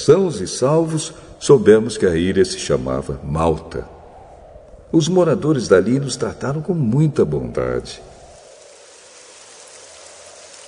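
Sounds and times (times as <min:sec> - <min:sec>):
speech: 0:00.0 - 0:04.0, 0:04.9 - 0:08.1
rain falling: 0:08.2 - 0:10.6.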